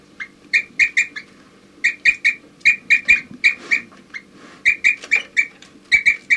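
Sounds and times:
group of birds making toop calls: 0.0 - 6.3.

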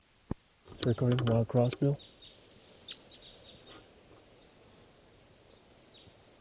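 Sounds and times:
steady outdoor hiss: 0.0 - 6.3
faint rustling outdoors: 0.6 - 6.1
speech: 0.8 - 2.1
high-pitched bird chirps outdoors: 1.7 - 4.6, 5.4 - 6.2.

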